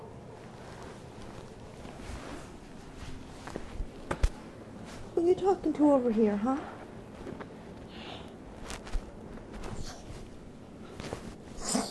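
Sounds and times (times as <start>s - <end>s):
faint rustling: 0.4s - 11.9s
speech: 5.2s - 6.8s
short breathy sneezes: 11.6s - 11.9s.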